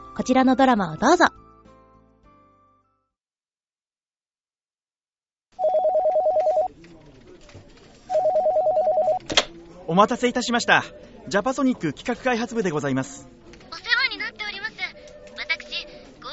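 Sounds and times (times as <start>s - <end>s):
speech: 0.2s - 1.4s, 10.0s - 13.5s
telephone ringing in loud trilling bursts: 5.6s - 6.7s, 8.1s - 9.3s.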